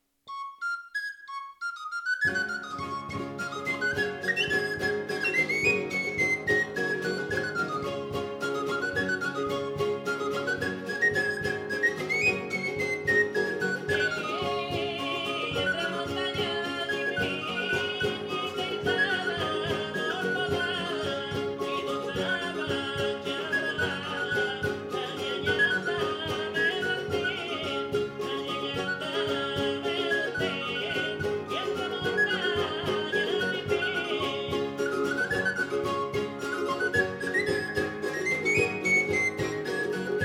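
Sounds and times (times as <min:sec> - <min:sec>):
jota played on flabiol: 0:00.3 - 0:40.2.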